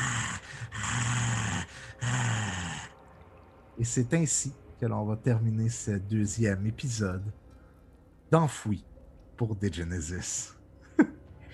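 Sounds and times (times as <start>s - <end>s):
voice imitating the growl of a young woman: 0.0s - 3.0s
speech: 3.8s - 7.4s, 8.3s - 11.1s.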